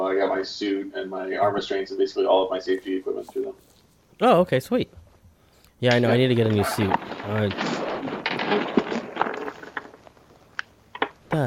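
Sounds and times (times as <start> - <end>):
speech: 0.1 - 5.0, 5.8 - 7.8, 8.5 - 8.8
chair creaking and rustling as a person shifts weight: 5.9 - 11.4
sharp thumps: 5.9 - 11.4.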